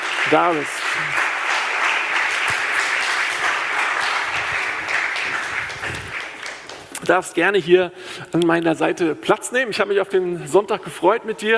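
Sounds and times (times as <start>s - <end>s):
crowd applauding: 0.0s - 7.0s
speech: 0.3s - 1.2s, 7.0s - 11.5s.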